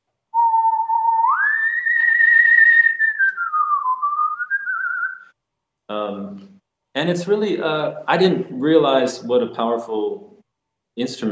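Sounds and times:
solo human whistle in full operatic style: 0:00.4 - 0:05.4
speech: 0:05.9 - 0:10.3, 0:11.0 - 0:11.3.

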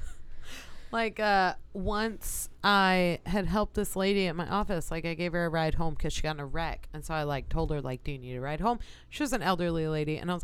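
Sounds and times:
soft airy breaths: 0:00.0 - 0:01.1, 0:08.8 - 0:09.2
speech: 0:00.9 - 0:10.4.

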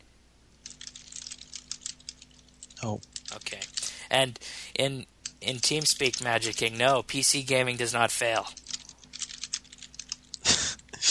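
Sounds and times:
typing on a computer keyboard: 0:00.6 - 0:04.0, 0:05.2 - 0:07.0, 0:08.2 - 0:10.4
speech: 0:02.8 - 0:08.6.

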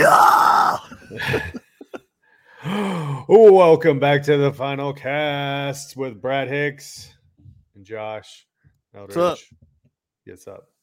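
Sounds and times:
man screaming into a microphone imitating metalcore intro vocals: 0:00.0 - 0:01.0
laughter: 0:00.8 - 0:02.0
speech: 0:03.3 - 0:07.2, 0:07.8 - 0:09.7, 0:10.3 - 0:10.8.

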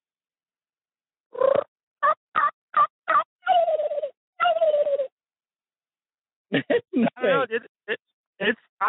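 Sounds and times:
person imitating turkey yelps and gobbles with mouth: 0:01.4 - 0:05.1
laughter: 0:06.5 - 0:07.6
speech: 0:06.5 - 0:08.8.

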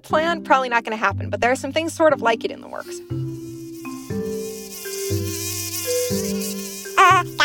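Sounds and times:
speech: 0:00.0 - 0:03.4
shifting low musical tones: 0:01.2 - 0:07.4
mosquito buzzing: 0:02.7 - 0:07.4.

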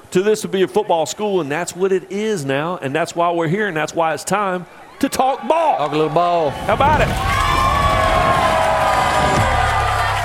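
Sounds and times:
speech: 0:00.1 - 0:07.3
huge stadium crowd booing the visiting team: 0:04.7 - 0:10.2.

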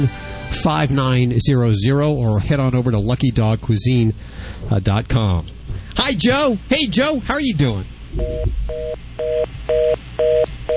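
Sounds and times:
speech: 0:00.0 - 0:09.3
faint low hum: 0:00.8 - 0:10.7
rapid two-tone busy signal beeps over a phone line: 0:08.2 - 0:10.7.

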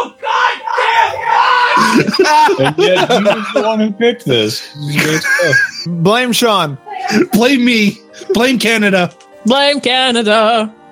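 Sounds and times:
person screaming in frustration: 0:00.0 - 0:02.2
laughter: 0:01.6 - 0:03.9, 0:04.8 - 0:05.9
speech: 0:01.8 - 0:10.8.

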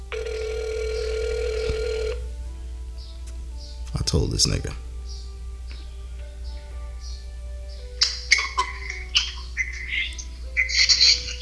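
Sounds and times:
ringback tone from an outgoing phone call: 0:00.0 - 0:02.3
low hum: 0:00.0 - 0:11.4
speech: 0:04.1 - 0:04.9.

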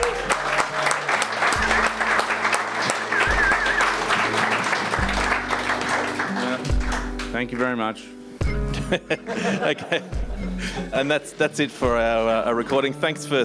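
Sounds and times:
crowd applauding: 0:00.0 - 0:07.7
faint whistles or cheers: 0:02.9 - 0:04.5
speech: 0:07.4 - 0:08.2, 0:08.9 - 0:13.4
laughter: 0:08.7 - 0:11.1.

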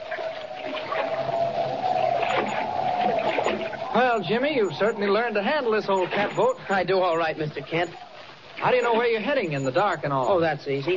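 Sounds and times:
constant whistling tone: 0:00.0 - 0:06.5
rushing choppy water around a small sailboat: 0:00.0 - 0:10.9
steady wind around a small sailboat: 0:00.0 - 0:10.9
speech: 0:04.0 - 0:08.0, 0:08.6 - 0:10.9.

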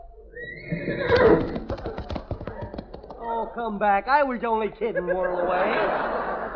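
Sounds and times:
horse giving a loud shrill whinny: 0:00.3 - 0:03.1
clip-clopping hoofbeats of a trotting horse: 0:00.6 - 0:03.2
laughter: 0:00.8 - 0:03.5, 0:04.8 - 0:06.5
speech: 0:03.5 - 0:06.1.

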